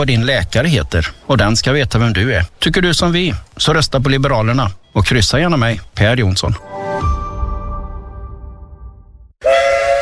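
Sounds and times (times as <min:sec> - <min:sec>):
speech: 0:00.0 - 0:07.1
vintage heritage steam train whistle at Skara: 0:09.4 - 0:10.0.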